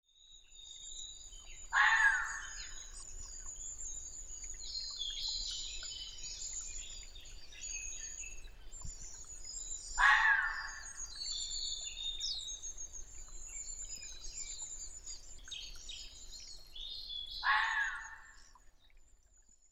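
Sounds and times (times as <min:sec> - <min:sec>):
red fox calling: 0:01.8 - 0:02.6, 0:10.0 - 0:10.9, 0:17.4 - 0:18.3.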